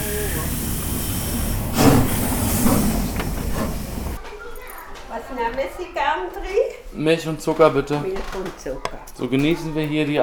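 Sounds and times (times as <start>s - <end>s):
coal-fired locomotive shunting to couple onto its train: 0.0s - 4.2s
sharp metallic clanks of locomotive coupling: 0.0s - 4.2s
speech: 5.3s - 10.2s.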